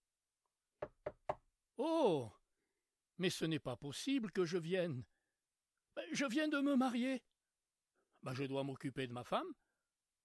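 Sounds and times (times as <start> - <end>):
firm knocking on a door: 0.8 - 1.5
speech: 1.8 - 2.4, 3.2 - 5.1, 6.1 - 7.3, 8.2 - 9.6.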